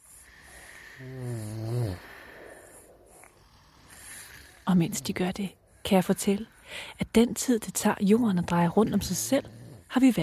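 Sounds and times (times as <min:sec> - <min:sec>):
sleeping child snoring: 0:00.0 - 0:04.7, 0:08.6 - 0:10.2
hiss: 0:00.0 - 0:07.1
speech: 0:01.0 - 0:01.3, 0:04.7 - 0:10.2.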